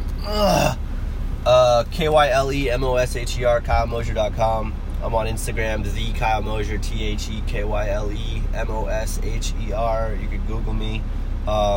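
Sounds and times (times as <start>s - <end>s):
person yawning: 0.2s - 0.8s
speech: 1.8s - 11.7s.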